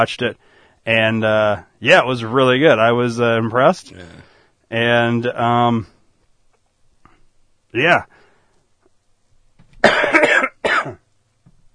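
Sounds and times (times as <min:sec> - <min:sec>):
speech: 0:00.0 - 0:05.9, 0:07.7 - 0:08.2
person coughing: 0:09.8 - 0:11.0.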